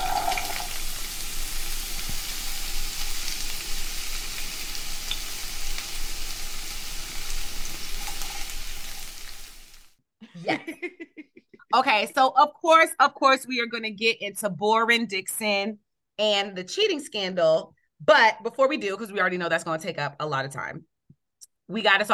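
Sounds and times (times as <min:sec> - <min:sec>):
sizzling hiss sound effect: 0:00.0 - 0:10.0
laughter: 0:10.2 - 0:11.7
speech: 0:11.8 - 0:20.9, 0:21.7 - 0:22.1.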